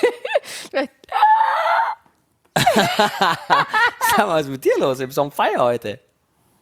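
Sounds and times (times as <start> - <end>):
speech: 0.8 - 1.2, 2.6 - 6.0
person vocally imitating screams of mating turtles: 1.1 - 2.0
laughter: 2.6 - 4.3.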